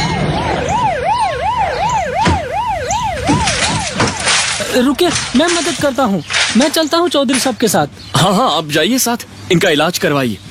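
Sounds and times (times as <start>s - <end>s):
ambulance siren wailing: 0.0s - 6.1s
traffic rumble: 0.0s - 10.4s
speech: 4.8s - 10.4s.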